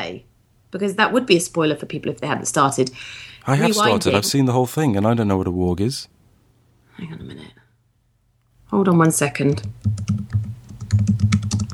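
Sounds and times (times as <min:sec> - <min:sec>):
speech: 0:00.1 - 0:06.2, 0:07.0 - 0:07.6, 0:08.7 - 0:11.6
typing on a computer keyboard: 0:09.4 - 0:11.7.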